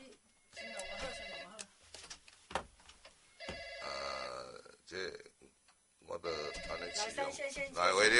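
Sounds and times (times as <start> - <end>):
electronic telephone ringing: 0.5 - 1.6, 3.3 - 4.3, 6.3 - 7.4
speech: 7.3 - 8.1.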